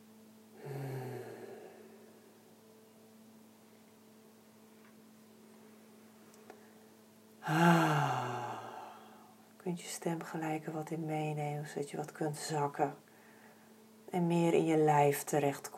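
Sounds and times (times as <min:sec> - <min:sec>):
faint steady hum: 0:00.0 - 0:15.7
slow deep breathing in and out: 0:00.6 - 0:02.4, 0:07.4 - 0:09.4
speech: 0:07.4 - 0:08.0, 0:09.7 - 0:13.1, 0:14.1 - 0:15.7.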